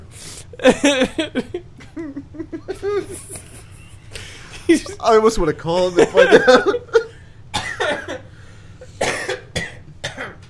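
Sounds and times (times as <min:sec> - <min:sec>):
speech: 0:00.6 - 0:01.6, 0:04.8 - 0:06.8
wet phlegmy cough: 0:02.8 - 0:05.0, 0:07.5 - 0:08.3, 0:09.0 - 0:10.4.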